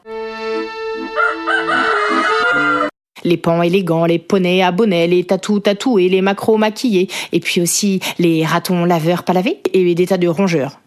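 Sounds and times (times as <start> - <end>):
rooster crowing: 1.0 - 3.0
speech: 3.2 - 10.8.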